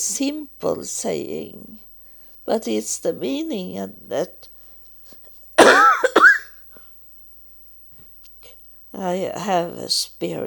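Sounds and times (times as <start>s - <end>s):
speech: 0.0s - 4.5s, 9.0s - 10.4s
person coughing: 5.6s - 6.5s.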